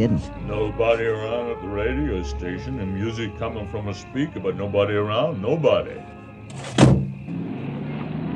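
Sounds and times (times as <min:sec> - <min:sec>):
speech: 0:00.0 - 0:07.0
arriving car engine idling: 0:00.0 - 0:08.2
sharp loud thump: 0:06.5 - 0:07.2.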